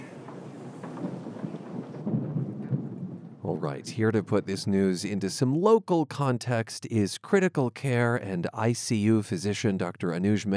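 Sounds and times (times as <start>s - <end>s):
hiss of falling rain: 0.0s - 5.1s
low rolling thunder rumbling in a thunderstorm: 0.0s - 5.5s
speech: 3.6s - 10.5s.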